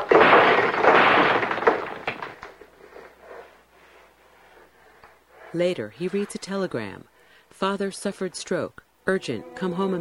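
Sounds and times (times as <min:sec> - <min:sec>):
plaster cast hurled to the floor and smashing: 0:00.0 - 0:03.2
smaller cracks and debris of plaster cast: 0:00.0 - 0:03.2
speech: 0:05.5 - 0:09.9.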